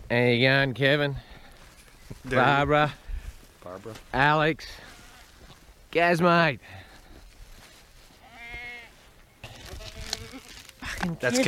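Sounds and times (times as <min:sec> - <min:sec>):
speech: 0:00.1 - 0:01.3, 0:02.2 - 0:03.0, 0:03.6 - 0:04.9, 0:06.0 - 0:06.8, 0:11.0 - 0:11.4
steady outdoor farmyard noise: 0:00.6 - 0:11.4
sheep bleating at feeding time: 0:04.8 - 0:05.5, 0:08.2 - 0:10.6.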